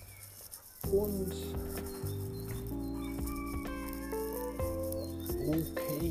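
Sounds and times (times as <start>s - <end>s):
speech: 0.9s - 1.9s
rooster crowing on a path lined with chicken runs: 1.2s - 6.0s.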